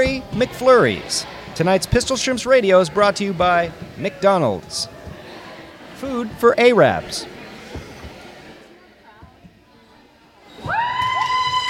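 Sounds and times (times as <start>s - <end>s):
crowd cheering wildly: 0.0s - 8.7s, 10.4s - 11.6s
speech: 0.1s - 5.0s, 6.0s - 7.3s
whistles from a crowd: 10.4s - 11.4s.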